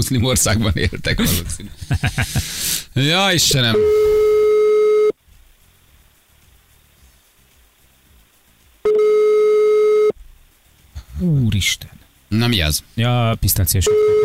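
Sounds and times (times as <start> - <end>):
speech: 0.0 - 4.3, 11.6 - 14.2
laughter: 0.5 - 2.6
phone line ringback tones, call not answered: 3.6 - 5.2, 8.9 - 10.2, 13.9 - 14.2.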